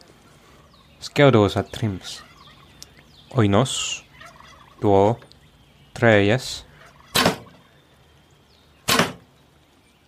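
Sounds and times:
speech: 1.0 - 2.3, 3.3 - 4.1, 4.8 - 5.3, 6.0 - 6.7
arrows whooshing through the air: 8.9 - 9.2.

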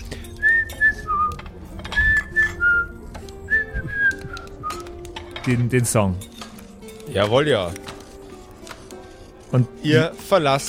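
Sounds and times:
person whistling a short melody in sliding notes: 0.3 - 4.9
speech: 5.5 - 6.3, 7.1 - 7.9, 9.5 - 10.6.

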